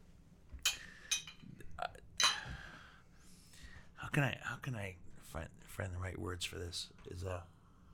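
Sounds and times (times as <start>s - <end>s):
glasses of honey beer clinking in a toast: 0.6s - 1.5s, 2.2s - 2.5s
speech: 4.2s - 7.5s.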